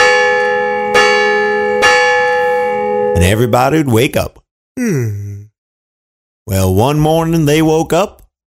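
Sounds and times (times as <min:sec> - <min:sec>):
large town bell ringing as a morning wake-up call: 0:00.0 - 0:03.5
speech: 0:03.2 - 0:05.2, 0:06.5 - 0:08.2.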